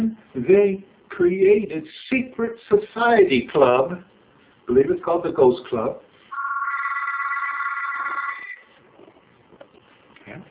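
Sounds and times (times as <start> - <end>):
speech: 0.1 - 4.1, 4.7 - 6.1
telephone bell ringing: 6.3 - 8.6.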